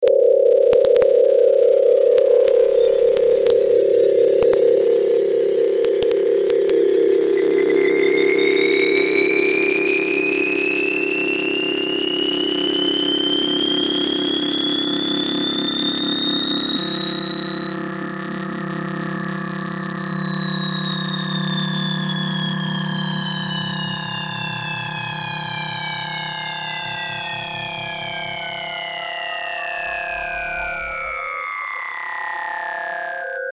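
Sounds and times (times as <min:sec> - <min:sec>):
sine tones: 0:00.0 - 0:33.5.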